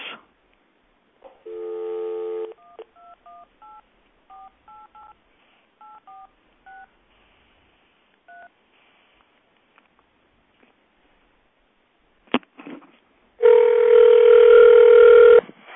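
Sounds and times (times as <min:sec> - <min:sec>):
telephone dial tone on speakerphone: 0:01.5 - 0:03.4, 0:13.4 - 0:15.4.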